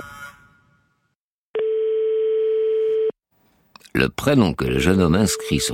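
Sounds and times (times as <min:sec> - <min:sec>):
telephone call tone as a call is placed: 0:01.6 - 0:03.2, 0:05.3 - 0:05.7
speech: 0:04.0 - 0:05.7.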